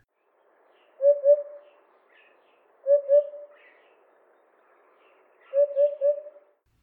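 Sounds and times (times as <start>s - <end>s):
hoopoe giving soft low cuckoo-like hooting calls: 0.8s - 4.0s, 5.1s - 6.6s.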